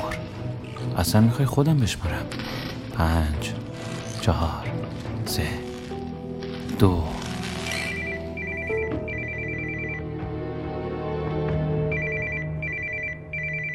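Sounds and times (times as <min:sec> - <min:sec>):
steady music: 0:00.0 - 0:13.7
speech: 0:00.9 - 0:03.6, 0:04.2 - 0:05.7, 0:06.8 - 0:07.3
telephone ringing with electronic trilling beeps: 0:07.7 - 0:10.2, 0:11.9 - 0:13.7.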